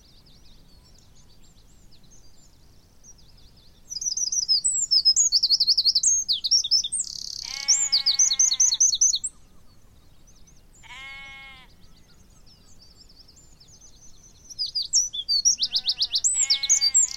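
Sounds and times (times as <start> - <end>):
Eurasian wren song: 0.0 - 17.1
harsh drawn-out bird call: 7.2 - 9.0, 15.5 - 17.1.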